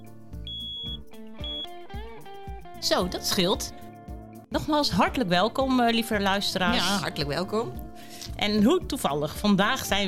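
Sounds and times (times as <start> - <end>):
smoke detector with a probably empty battery beeping: 0.4 - 1.8
speech: 2.8 - 3.8, 4.6 - 10.0.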